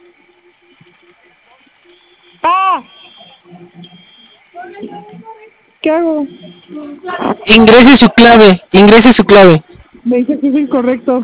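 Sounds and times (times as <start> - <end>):
faint voices: 0.8 - 11.2
security alarm electronic beep: 1.2 - 4.6, 6.0 - 8.2, 10.4 - 11.2
speech: 3.6 - 4.1, 4.8 - 11.2.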